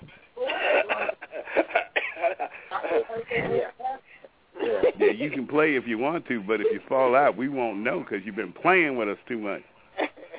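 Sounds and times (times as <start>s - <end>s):
laughter: 0.4s - 3.6s, 4.6s - 5.4s, 10.0s - 10.3s
man coughing and clearing throat: 1.9s - 2.4s
speech: 5.2s - 9.8s.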